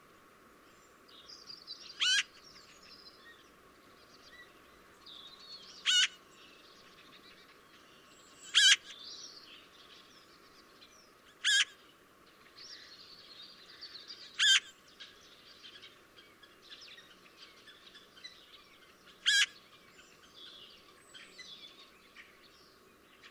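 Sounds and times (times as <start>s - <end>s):
Eurasian magpie Pica pica uttering harsh rasping notes: 2.0s - 2.3s, 5.9s - 6.2s, 8.5s - 8.9s, 11.4s - 11.8s, 14.4s - 14.7s, 19.2s - 19.6s.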